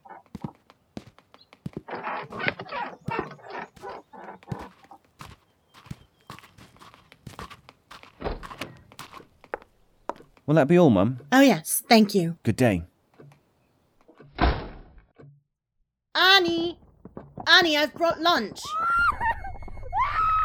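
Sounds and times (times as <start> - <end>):
footsteps: 0.0 - 10.5, 16.4 - 19.1
speech: 10.5 - 12.9, 17.6 - 18.8
door shutting with a thunk: 14.2 - 15.0.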